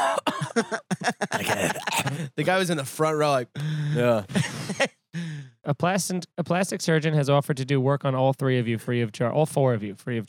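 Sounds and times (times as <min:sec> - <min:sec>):
person imitating a dainty high-pitched feminine cough: 0:00.0 - 0:02.2
laughter: 0:00.0 - 0:02.4, 0:04.0 - 0:05.0
speech: 0:01.4 - 0:04.9, 0:05.7 - 0:10.2.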